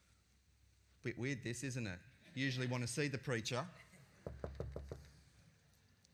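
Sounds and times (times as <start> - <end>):
speech: 1.0 - 4.4
knocking on a wooden door: 4.2 - 5.1.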